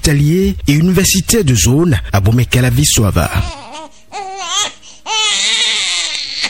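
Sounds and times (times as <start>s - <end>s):
speech: 0.0s - 3.8s
newborn baby born by caesarean crying: 3.2s - 6.4s.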